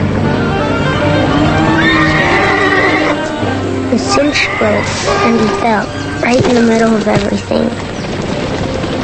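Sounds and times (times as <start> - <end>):
rumbling noise: 0.0 - 9.0
startled horse whinnying in a shrill rising cry: 1.5 - 3.3, 4.2 - 6.3
speech: 4.1 - 7.9.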